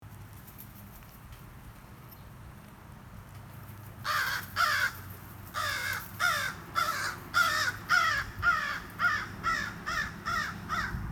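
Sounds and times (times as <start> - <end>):
American crow calling in a county park with large oaks and pines: 4.1 - 5.0, 5.6 - 11.0.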